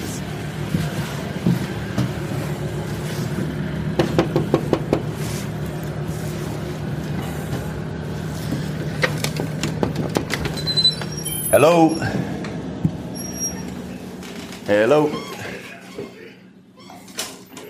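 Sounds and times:
constant low mechanical rumble: 0:00.0 - 0:17.6
knocking on a door: 0:04.0 - 0:05.1
speech: 0:11.6 - 0:12.2, 0:14.7 - 0:15.3.

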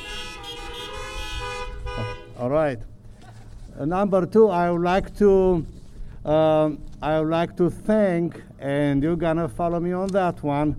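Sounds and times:
chorus of car horns honking: 0:00.0 - 0:02.5
speech: 0:02.4 - 0:03.0, 0:03.8 - 0:10.7.

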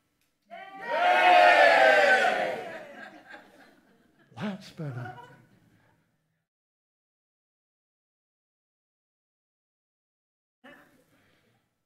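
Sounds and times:
large crowd cheering: 0:00.5 - 0:03.4
laughter: 0:02.5 - 0:05.7
speech: 0:04.8 - 0:05.3.

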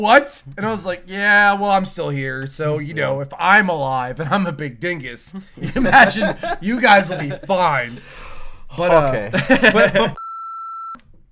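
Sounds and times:
speech: 0:00.0 - 0:10.2
laughter: 0:05.3 - 0:08.1, 0:08.8 - 0:10.2
electronic censor bleep tone masking a word: 0:10.2 - 0:11.0.

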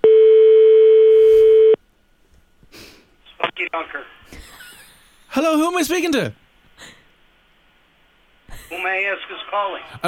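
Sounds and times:
electronic telephone ringing tone on an outgoing call to a doughnut shop: 0:00.0 - 0:01.8
speech: 0:05.4 - 0:06.4, 0:08.7 - 0:10.0.

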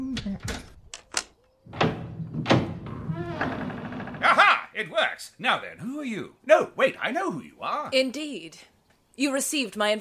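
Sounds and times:
door being worked open, clunking and rattling: 0:01.7 - 0:04.2
speech: 0:04.8 - 0:09.9.

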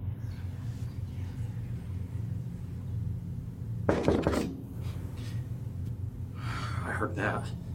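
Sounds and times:
steady low hum: 0:00.0 - 0:07.7
sharp knocks: 0:03.9 - 0:04.6
speech: 0:07.0 - 0:07.7.

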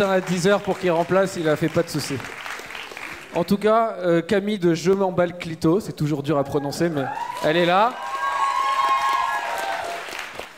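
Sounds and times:
speech: 0:00.0 - 0:02.4, 0:03.3 - 0:08.1
audience clapping: 0:00.0 - 0:03.7, 0:07.0 - 0:10.5
audience whoops and shouts: 0:06.4 - 0:10.1.

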